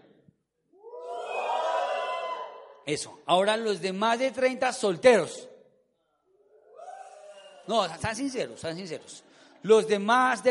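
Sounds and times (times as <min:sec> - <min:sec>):
large audience shouting and cheering in joy: 0:00.8 - 0:02.8
speech: 0:02.9 - 0:05.5, 0:07.7 - 0:10.4.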